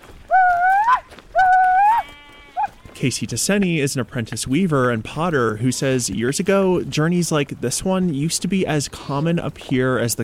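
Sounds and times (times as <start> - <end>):
Churro sheep bleating while driven up the mountains to summer sheep camp: 1.4 - 3.0
speech: 3.0 - 10.2.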